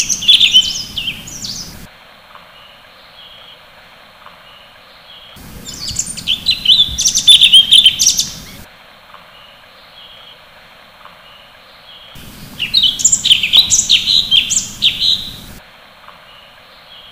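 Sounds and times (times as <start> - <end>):
sooty-headed bulbul song with high chirping and whistled notes: 0.0 - 1.9, 5.3 - 8.7, 12.1 - 15.6.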